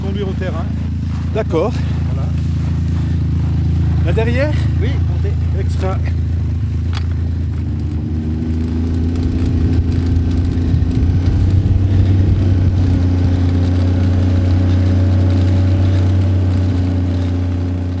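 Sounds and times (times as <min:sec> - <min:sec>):
snowmobile engine running during a short ride: 0:00.0 - 0:17.9
speech: 0:00.2 - 0:02.0, 0:04.0 - 0:06.2.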